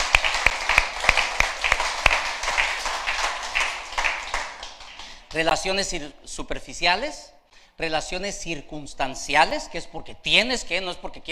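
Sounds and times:
audience applause: 0.0 - 5.2
sharp loud claps: 0.0 - 5.6
speech: 5.3 - 11.3.

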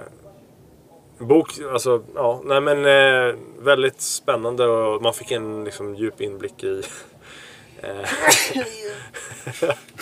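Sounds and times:
speech: 1.2 - 10.0
laughter: 8.0 - 10.0
loud sneeze: 8.1 - 8.9.

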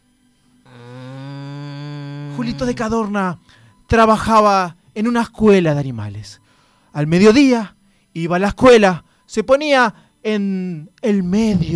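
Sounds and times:
cow mooing: 0.7 - 3.0
speech: 2.4 - 11.7.

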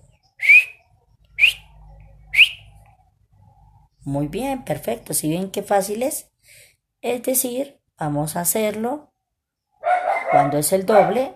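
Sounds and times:
person whistling short sharp whistles with upward pitch slide: 0.4 - 0.8
speech: 4.0 - 9.1, 10.3 - 11.3.

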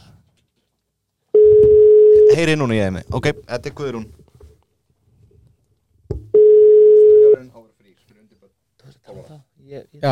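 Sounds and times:
outgoing phone call ringing tone: 1.4 - 2.4, 6.4 - 7.4
speech: 2.4 - 4.2, 9.7 - 10.1.

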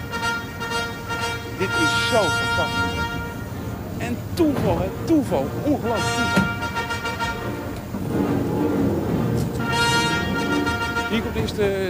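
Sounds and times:
sustained car horn toot: 0.0 - 3.7, 5.8 - 7.8, 9.6 - 11.6
car carrying the arriving president rolling past: 0.0 - 11.8
noisy street crowd in a city full of soldiers: 0.0 - 11.8
speech: 1.6 - 3.0, 4.0 - 6.6, 11.1 - 11.8.

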